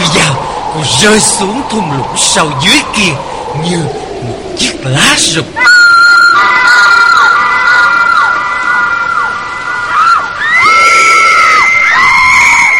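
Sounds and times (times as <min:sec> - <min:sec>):
rain: 0:00.0 - 0:12.7
wind: 0:00.0 - 0:12.7
speech: 0:00.8 - 0:05.8
three girls screaming: 0:05.6 - 0:12.7.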